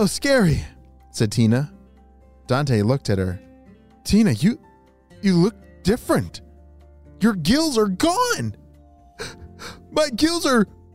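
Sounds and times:
speech: 0.0s - 1.8s, 2.5s - 6.4s, 7.2s - 8.6s, 9.2s - 10.8s
person acting out gasping for air: 9.2s - 9.9s.

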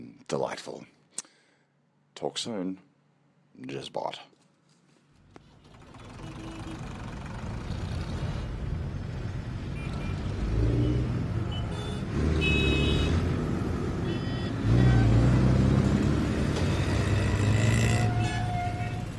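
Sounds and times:
speech: 0.3s - 1.3s, 2.2s - 2.9s, 3.6s - 4.3s
deep continuous rumble of road noise: 5.1s - 19.1s
bus engine droning on a long trip: 5.2s - 19.1s.

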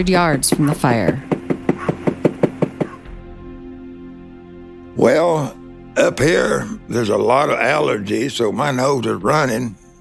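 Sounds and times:
speech: 0.0s - 1.3s, 5.0s - 9.8s
knocking on the door of a travel trailer: 0.4s - 3.2s.

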